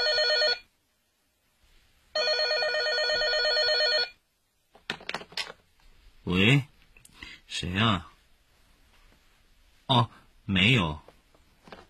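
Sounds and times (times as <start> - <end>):
electronic telephone ringing: 0.0 - 0.7, 2.2 - 4.2
speech: 6.3 - 6.7, 7.5 - 8.1, 9.9 - 11.0.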